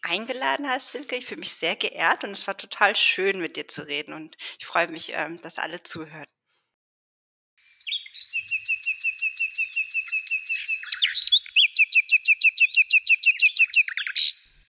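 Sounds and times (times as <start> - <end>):
speech: 0.1 - 6.3
nightingale singing: 7.6 - 14.7.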